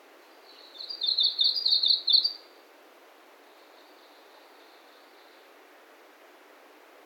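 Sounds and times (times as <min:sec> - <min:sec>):
Japanese leaf warbler singing a rattling phrase: 0:00.4 - 0:02.4.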